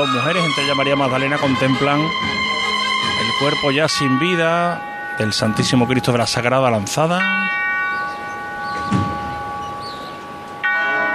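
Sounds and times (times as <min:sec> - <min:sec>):
speech: 0:00.0 - 0:02.5, 0:03.3 - 0:07.6
metal bell bar struck with a wooden mallet ringing: 0:02.5 - 0:11.1.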